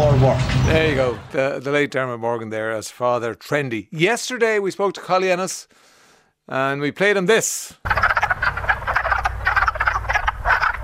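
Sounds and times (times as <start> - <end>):
steady low rumble: 0.0 - 1.4
speech: 0.2 - 5.9, 6.5 - 8.1
dense chorus of an exotic frog croaking in rapid pulses: 7.8 - 10.8.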